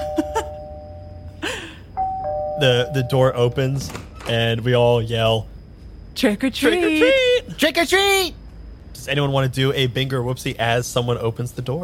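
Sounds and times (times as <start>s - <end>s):
electronic doorbell chimes pressed by a child trick-or-treating on Halloween: 0.0s - 1.4s, 2.0s - 3.6s
steady noise: 0.0s - 11.8s
speech: 2.6s - 5.5s, 6.2s - 8.4s, 9.0s - 11.8s.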